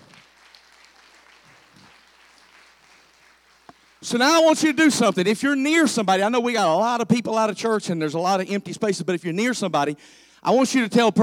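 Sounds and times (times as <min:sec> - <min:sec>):
crowd at a church gathering applauding: 0:00.0 - 0:04.6
speech: 0:04.0 - 0:11.2.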